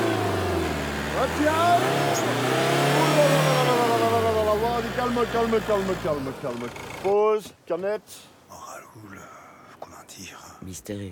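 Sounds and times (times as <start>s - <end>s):
car engine humming and revving: 0.0s - 7.1s
speech: 1.2s - 2.7s, 5.0s - 8.3s, 10.2s - 11.0s.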